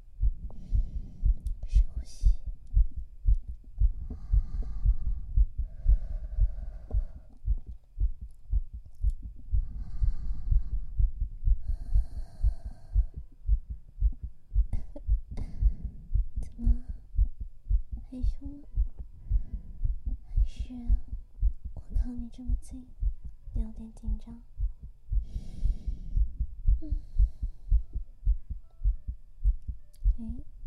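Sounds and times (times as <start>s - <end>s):
fast heartbeat heard through a person's bare chest: 0.0s - 30.6s
faint breathy sounds: 0.2s - 3.1s, 3.8s - 8.1s, 9.5s - 17.8s, 18.7s - 21.6s, 24.6s - 29.1s
speech: 18.2s - 18.8s, 20.7s - 21.1s, 22.0s - 23.0s, 23.6s - 24.5s, 26.8s - 27.1s.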